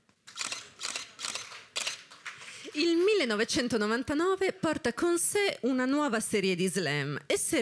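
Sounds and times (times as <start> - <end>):
camera shutter clicks: 0.3 - 2.0
speech: 2.8 - 7.6.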